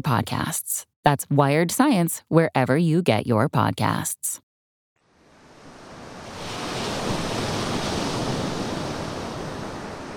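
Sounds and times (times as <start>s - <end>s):
speech: 0.0s - 4.4s
blustery wind: 5.1s - 10.1s
ocean surf crashing on a beach: 5.1s - 10.1s.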